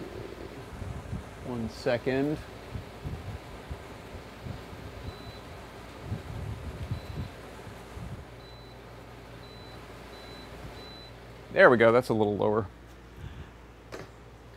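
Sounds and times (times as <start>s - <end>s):
air conditioner fan blowing: 0.0s - 14.5s
gusty low rumbles buffeting the microphone: 0.4s - 1.6s, 2.5s - 8.3s
speech: 1.5s - 2.6s, 11.6s - 12.8s
short beeps: 5.1s - 5.4s, 9.4s - 11.2s.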